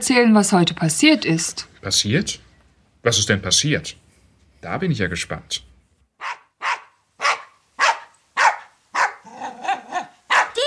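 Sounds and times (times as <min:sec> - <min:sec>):
speech: 0:00.0 - 0:02.4, 0:03.0 - 0:04.0, 0:04.6 - 0:05.7
dog barking loudly: 0:06.2 - 0:10.6.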